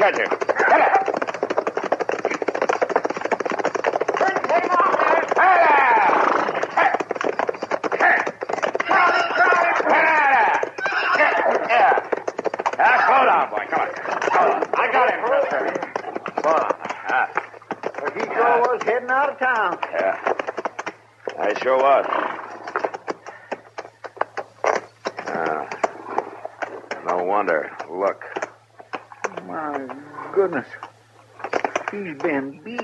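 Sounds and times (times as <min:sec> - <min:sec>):
speech: 0:00.0 - 0:01.1, 0:21.6 - 0:22.3, 0:27.4 - 0:28.3, 0:30.4 - 0:30.8, 0:31.9 - 0:32.8
horse neighing shrilly: 0:00.0 - 0:02.6, 0:04.0 - 0:20.6, 0:21.4 - 0:27.5
horse galloping hard with pounding hoofbeats: 0:00.0 - 0:32.8
people shouting: 0:00.6 - 0:01.2, 0:04.2 - 0:07.0, 0:08.0 - 0:12.1, 0:12.8 - 0:13.4.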